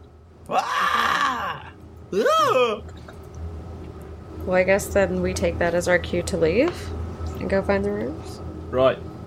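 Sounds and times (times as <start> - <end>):
speech: 0.5 - 0.9, 2.1 - 3.0, 4.5 - 9.1
loud drawn-out anguished scream: 0.5 - 2.8.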